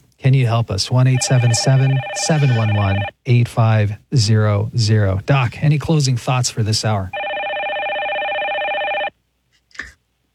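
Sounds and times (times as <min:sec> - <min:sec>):
speech: 0:00.2 - 0:07.2
telephone ringing in electronic tones: 0:00.9 - 0:03.1, 0:07.2 - 0:09.1.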